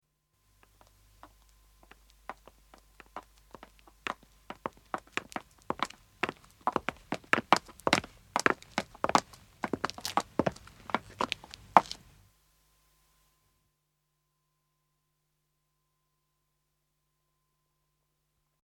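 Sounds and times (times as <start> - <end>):
footsteps of a man and a woman walking on pavement: 0.6 - 12.1.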